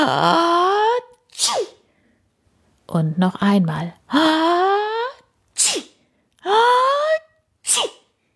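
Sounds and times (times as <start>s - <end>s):
speech: 0.0s - 0.4s, 2.9s - 4.6s
voice imitating a dragon's sneeze caused by dandelion seeds tickling its nose: 0.0s - 1.8s, 4.6s - 8.1s.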